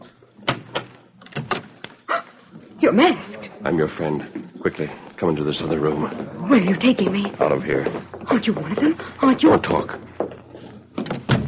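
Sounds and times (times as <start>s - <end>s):
speech: 2.9s - 10.1s
door being opened with clacks and thumps: 11.0s - 11.4s.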